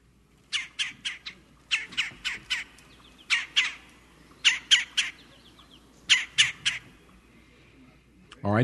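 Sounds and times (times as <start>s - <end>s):
red-bellied woodpecker harsh rolling churring calls: 0.5s - 7.1s.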